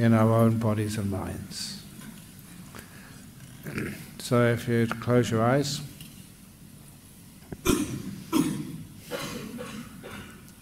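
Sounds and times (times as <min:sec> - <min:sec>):
speech: 0:00.0 - 0:01.8, 0:03.6 - 0:05.9
throat clearing: 0:03.7 - 0:04.1, 0:07.6 - 0:10.5
audience at a meditation coughing: 0:07.6 - 0:10.5.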